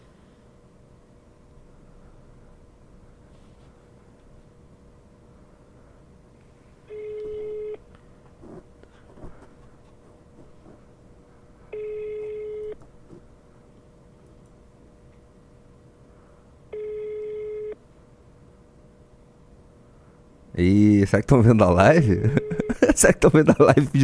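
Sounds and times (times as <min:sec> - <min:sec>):
faint hum: 0:00.0 - 0:24.0
phone ringback tone, unanswered: 0:06.9 - 0:07.8, 0:11.7 - 0:12.8, 0:16.7 - 0:17.8, 0:22.3 - 0:22.9
speech: 0:20.6 - 0:24.0
laughter: 0:22.0 - 0:24.0.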